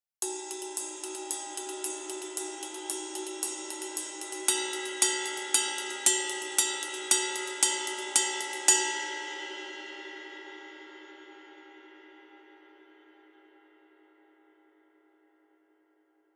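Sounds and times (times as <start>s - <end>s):
extra heavy custom ride cymbal: 0.2s - 11.2s.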